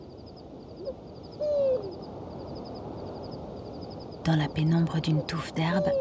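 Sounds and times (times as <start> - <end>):
insects trilling at night: 0.0 - 5.9
desert eagle owl hooting: 0.8 - 2.0
speech: 4.3 - 5.9.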